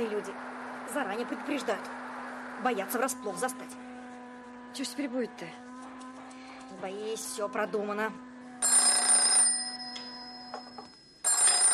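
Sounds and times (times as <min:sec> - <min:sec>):
speech: 0:00.2 - 0:02.0, 0:02.6 - 0:03.9, 0:04.7 - 0:05.7, 0:06.7 - 0:08.3
telephone bell ringing in a radio play: 0:08.6 - 0:11.7.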